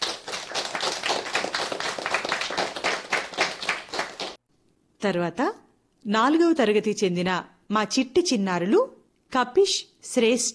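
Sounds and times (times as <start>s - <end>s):
school audience clapping for a children's song: 0.0s - 4.4s
speech: 5.0s - 10.5s.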